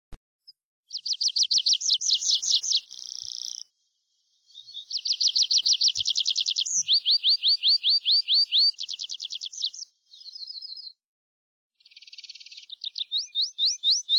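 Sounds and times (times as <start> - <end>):
Tree pipit song: 0.4 - 11.0, 11.8 - 14.1.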